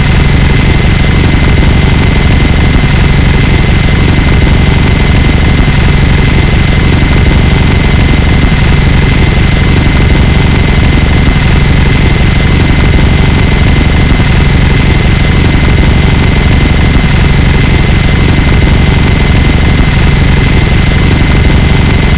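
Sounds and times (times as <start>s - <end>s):
minigun fire: 0.0s - 22.1s.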